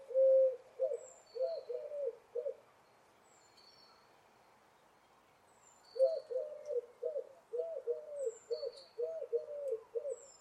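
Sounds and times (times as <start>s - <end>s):
bird giving low soft rolling coos: 0.0s - 2.6s, 6.0s - 10.4s.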